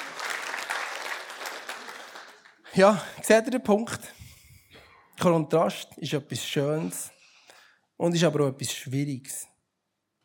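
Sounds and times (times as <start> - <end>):
audience applauding a singer: 0.0 - 2.8
speech: 2.8 - 4.2, 5.2 - 7.2, 8.0 - 9.5.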